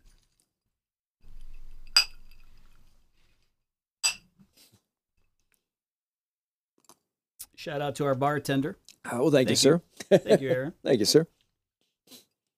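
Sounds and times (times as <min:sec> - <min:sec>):
glasses of a bourbon Manhattan-style cocktail clinking in a toast: 0:01.4 - 0:02.6, 0:04.0 - 0:04.4
speech: 0:07.6 - 0:11.4.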